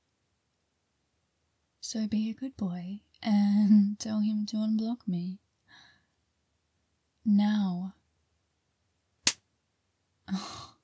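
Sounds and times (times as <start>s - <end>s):
speech: 1.9s - 5.4s, 7.2s - 8.0s, 10.3s - 10.6s
sharp slap to the face: 9.2s - 9.4s.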